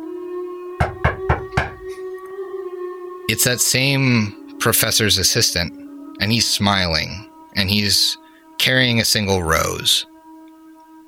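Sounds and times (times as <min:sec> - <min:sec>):
firm knocks on a door: 0:00.8 - 0:01.9
speech: 0:03.3 - 0:10.1.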